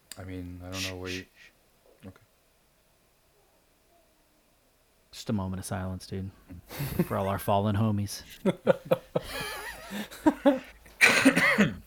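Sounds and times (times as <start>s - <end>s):
speech: 0.2s - 2.2s, 5.2s - 11.8s
laughter: 8.4s - 10.8s
person coughing with harsh hacking coughs: 10.4s - 11.8s.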